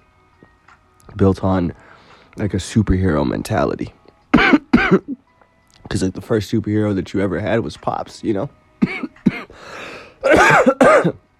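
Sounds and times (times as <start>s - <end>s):
speech: 1.2s - 5.2s, 5.9s - 9.2s, 10.2s - 11.2s
person coughing: 4.3s - 5.2s, 8.8s - 9.5s, 10.2s - 11.2s.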